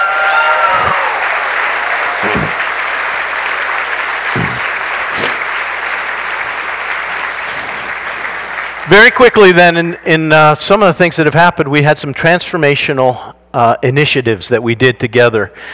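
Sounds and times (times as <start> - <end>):
large crowd audience applause: 0.0 - 9.5
speech: 8.9 - 15.7.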